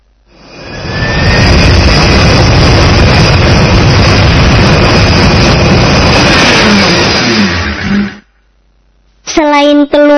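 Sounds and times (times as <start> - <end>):
airplane engine roar with a faint whine: 0.3 - 8.4.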